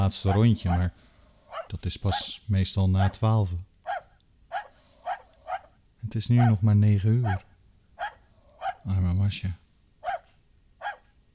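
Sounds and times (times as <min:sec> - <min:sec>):
speech: 0:00.0 - 0:01.1, 0:01.7 - 0:03.7, 0:06.0 - 0:07.5, 0:08.8 - 0:09.6
large white dog barking: 0:00.1 - 0:02.4, 0:03.8 - 0:06.6, 0:07.2 - 0:08.9, 0:10.0 - 0:11.1.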